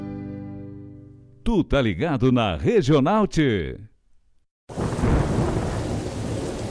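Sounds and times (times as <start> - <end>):
speech: 1.5 - 3.9
deep rumble of thunder: 4.7 - 6.7
steady dense roar of pouring rain: 4.7 - 6.7.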